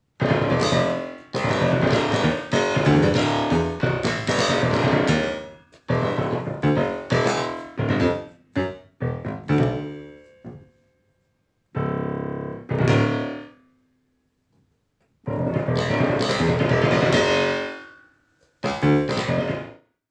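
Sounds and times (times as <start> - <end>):
piano: 0.0 - 11.1, 11.8 - 13.7, 15.2 - 18.0, 18.6 - 19.8.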